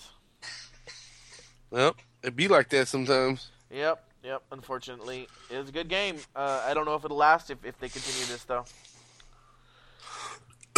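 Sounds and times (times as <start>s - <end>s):
person coughing: 0.4s - 2.1s
speech: 1.7s - 8.9s.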